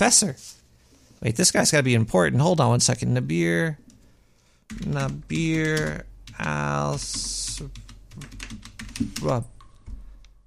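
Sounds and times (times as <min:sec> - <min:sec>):
speech: 0:00.0 - 0:00.6, 0:01.2 - 0:03.8, 0:04.7 - 0:09.6
typing on a computer keyboard: 0:04.7 - 0:10.0.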